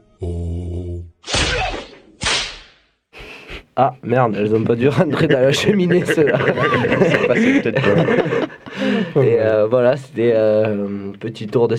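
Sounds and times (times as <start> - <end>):
whip cracks: 1.2 - 2.9
speech: 3.8 - 11.7
laughter: 4.8 - 9.4.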